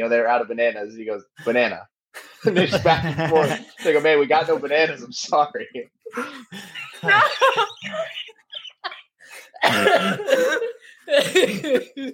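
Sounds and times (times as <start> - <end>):
speech: 0.0 - 8.4, 9.6 - 12.1
laughter: 2.2 - 4.7, 6.2 - 12.1
person coughing: 9.5 - 12.1.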